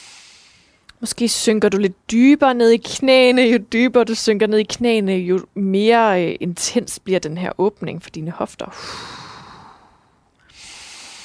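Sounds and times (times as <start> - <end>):
person breathing during a yoga hip-opening stretch: 0.0 - 0.8, 8.7 - 11.2
speech: 1.0 - 9.2.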